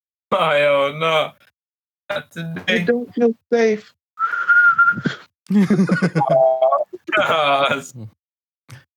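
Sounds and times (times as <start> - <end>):
speech: 0.3 - 1.4, 2.1 - 8.2
whistle being blown: 4.2 - 5.2.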